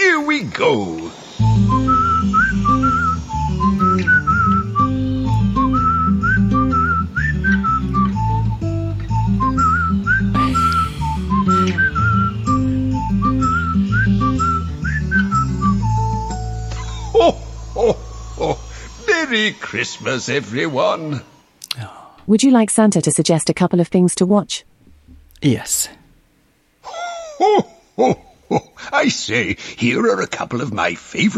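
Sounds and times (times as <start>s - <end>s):
speech: 0.3s - 1.8s, 19.4s - 21.3s, 22.3s - 24.7s, 25.4s - 26.0s, 26.8s - 31.3s
man whistling a bright bouncy melody: 1.3s - 20.1s
backing track music: 1.4s - 18.8s.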